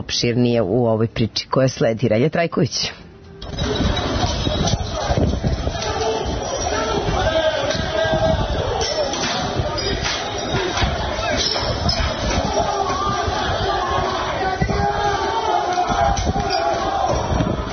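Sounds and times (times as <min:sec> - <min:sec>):
speech: 0:00.0 - 0:03.9
chairs, shop windows and containers being smashed: 0:03.4 - 0:17.7
roar of rioting football fans at night: 0:03.5 - 0:17.7.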